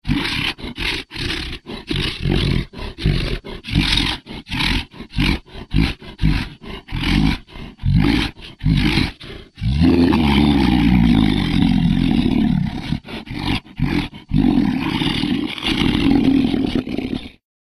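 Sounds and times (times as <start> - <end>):
angry monster: 0.0 - 17.4.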